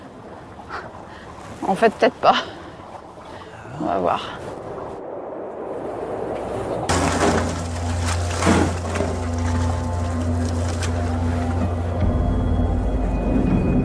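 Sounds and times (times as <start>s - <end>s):
boat engine droning: 0.0s - 13.8s
speech: 1.6s - 2.6s, 3.8s - 4.6s
ice cracking and splintering: 6.9s - 11.6s.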